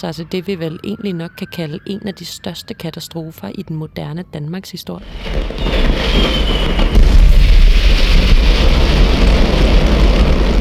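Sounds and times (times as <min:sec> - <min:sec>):
faint high whistle: 0:00.0 - 0:03.1, 0:05.5 - 0:06.9
speech: 0:00.0 - 0:07.0
huge fireworks depot explosion: 0:05.0 - 0:10.5
sustained deep rumbling roar: 0:05.0 - 0:10.5.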